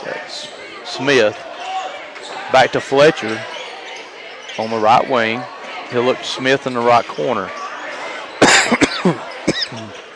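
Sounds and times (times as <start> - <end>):
faint noise: 0.0 - 10.1
speech: 1.0 - 1.5, 2.5 - 3.5, 4.6 - 7.6
man coughing: 8.4 - 9.9.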